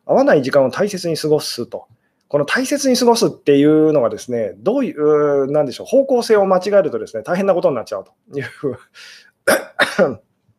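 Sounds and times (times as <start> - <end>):
speech: 0.1 - 10.3
person coughing: 9.5 - 10.2.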